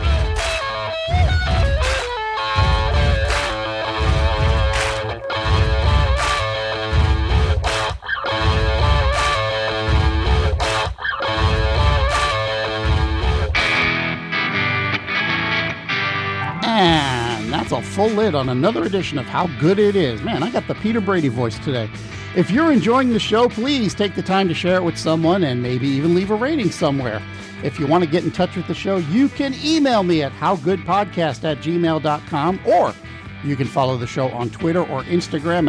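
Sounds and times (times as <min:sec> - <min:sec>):
multitracked foot stomping and hand clapping rhythm by rock band members in a recording studio: 0:00.0 - 0:13.7
distorted instruments playing: 0:00.0 - 0:21.4
speech: 0:17.8 - 0:35.6.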